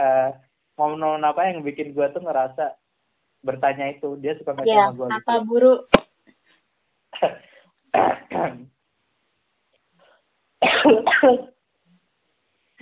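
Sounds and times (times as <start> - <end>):
speech: 1.0 - 2.8, 3.4 - 6.1, 7.2 - 8.7, 10.8 - 11.5
harsh raspy coughing fit: 10.6 - 11.5.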